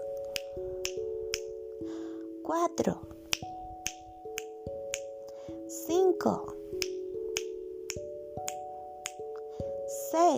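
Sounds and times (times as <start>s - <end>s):
crisp finger snaps: 0.2s - 1.6s, 3.3s - 5.4s, 6.8s - 9.5s
speech: 2.5s - 3.2s, 6.2s - 6.6s, 10.2s - 10.3s.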